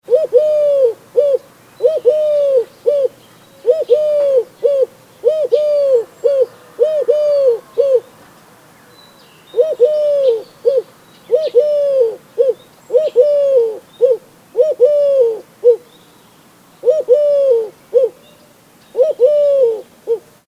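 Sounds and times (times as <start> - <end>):
mourning dove call: 0.0 - 16.1, 16.8 - 20.4.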